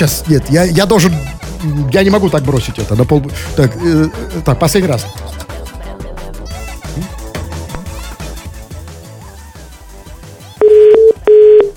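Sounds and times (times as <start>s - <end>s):
speech: 0.0s - 5.5s
phone ringback tone of an unanswered outgoing call: 10.6s - 11.7s.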